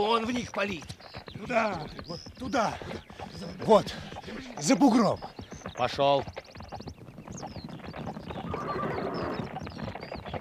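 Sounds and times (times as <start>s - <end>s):
speech: 0.0s - 6.4s
horse hooves galloping: 0.0s - 10.3s
whinny-like cry: 8.4s - 9.6s.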